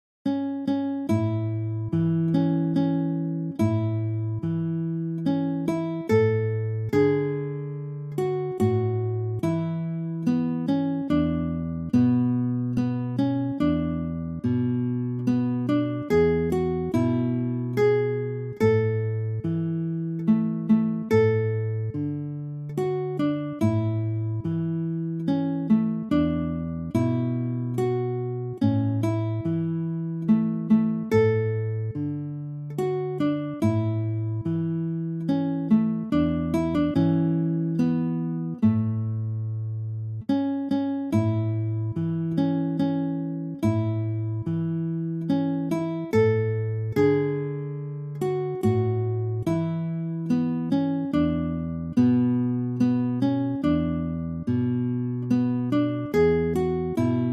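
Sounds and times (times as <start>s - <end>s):
lullaby played on guitar: 0.2s - 57.3s.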